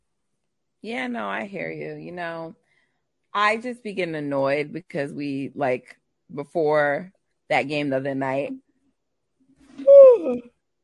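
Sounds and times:
speech: 0:00.8 - 0:02.6, 0:03.4 - 0:08.6, 0:10.2 - 0:10.5
person yawning: 0:09.8 - 0:10.5.

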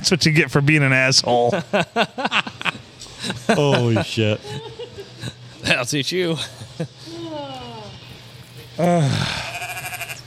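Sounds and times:
speech: 0:00.0 - 0:04.7, 0:05.6 - 0:07.1, 0:08.8 - 0:09.5
laughter: 0:01.3 - 0:07.5
sheep bleating: 0:09.0 - 0:10.2.

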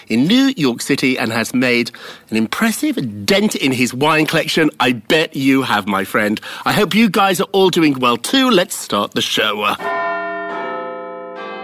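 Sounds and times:
speech: 0:00.0 - 0:10.0
large clock tower bell chiming: 0:09.8 - 0:11.6.

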